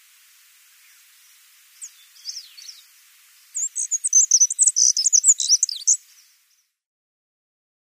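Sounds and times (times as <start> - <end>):
black-throated accentor singing a jingling twittering phrase: 0.8 - 6.8.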